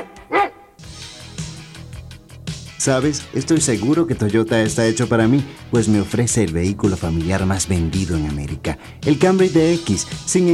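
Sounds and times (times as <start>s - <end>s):
dog barking in a dog food commercial: 0.0s - 0.8s
steady sound: 0.0s - 10.5s
speech: 2.8s - 10.5s.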